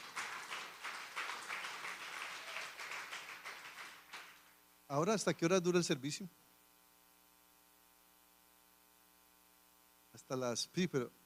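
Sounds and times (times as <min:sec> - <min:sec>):
audience at a church service applauding: 0:00.0 - 0:04.5
speech: 0:04.9 - 0:06.4, 0:10.3 - 0:11.2.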